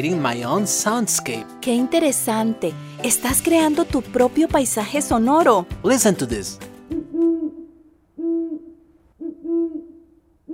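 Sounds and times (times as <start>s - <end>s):
speech: 0.0s - 6.7s
owl hooting: 6.9s - 10.5s.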